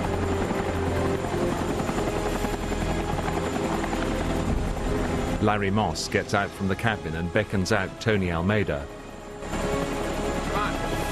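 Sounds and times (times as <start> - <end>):
helicopter landing on a rooftop: 0.0 - 11.0
speech: 5.4 - 9.6.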